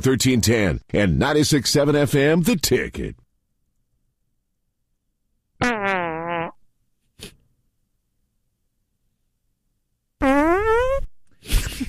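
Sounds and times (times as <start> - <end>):
speech: 0.0 - 3.2
buzzy fart sound effects with wobbling pitch: 5.6 - 6.6, 10.2 - 11.1.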